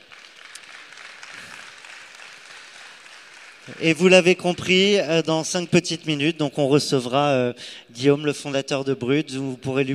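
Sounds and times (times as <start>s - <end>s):
audience applause: 0.0s - 4.9s
speech: 3.7s - 9.9s.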